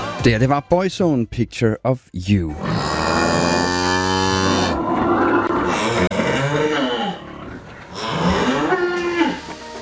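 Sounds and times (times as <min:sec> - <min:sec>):
speech: 0:00.2 - 0:02.8
cows mooing: 0:02.6 - 0:09.6.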